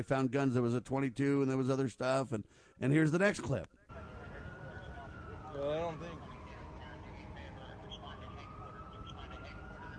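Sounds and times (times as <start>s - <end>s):
speech: 0.0s - 3.8s, 5.6s - 6.3s
siren wailing on a city street: 3.9s - 9.9s
steady rumble of city street noise: 3.9s - 9.9s.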